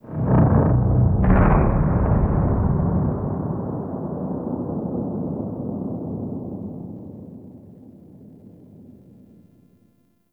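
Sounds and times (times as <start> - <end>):
distant seismic explosion outdoors: 0.1 - 6.5.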